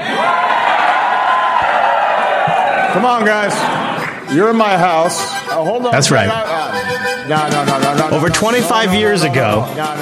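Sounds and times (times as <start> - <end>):
rowdy crowd cheering and whooping: 0.0 - 4.2
speech: 2.9 - 10.0.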